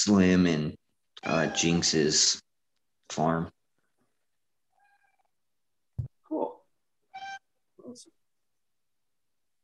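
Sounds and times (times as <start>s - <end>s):
speech: 0.0s - 2.4s, 3.1s - 3.6s, 7.9s - 8.2s
cat meowing: 1.2s - 1.9s, 4.8s - 5.3s, 7.1s - 7.4s.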